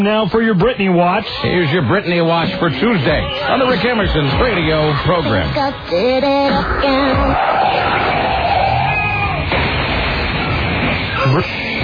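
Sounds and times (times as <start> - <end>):
speech: 0.0 - 8.1, 11.3 - 11.8
dense wash of noisy crowd-like effects: 0.0 - 11.8
radio segment intro sounder: 0.0 - 11.8
brief sung or shouted vocal fragments: 3.1 - 8.8.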